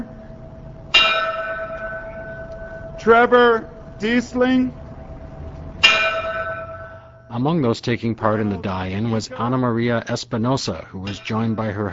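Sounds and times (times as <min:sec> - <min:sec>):
single bell struck at a nighttime vigil on courthouse steps: 0:00.9 - 0:03.6, 0:05.8 - 0:07.4
speech: 0:03.0 - 0:04.8, 0:07.4 - 0:11.9.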